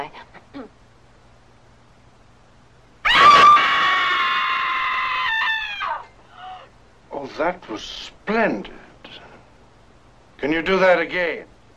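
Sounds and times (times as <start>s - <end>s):
woman screaming high-pitched: 3.0s - 6.7s
speech: 7.4s - 8.8s, 10.4s - 11.5s.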